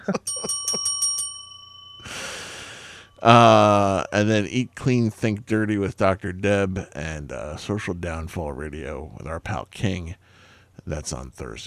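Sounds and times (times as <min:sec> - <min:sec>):
speech: 0:00.0 - 0:00.3, 0:03.2 - 0:11.6
small bell ringing: 0:00.0 - 0:03.8.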